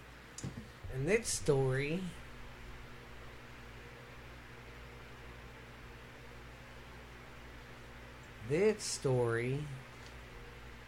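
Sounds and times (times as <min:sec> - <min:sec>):
low electrical hum: 0:00.0 - 0:10.8
white noise hiss: 0:00.0 - 0:10.8
speech: 0:00.9 - 0:02.2, 0:08.5 - 0:09.9.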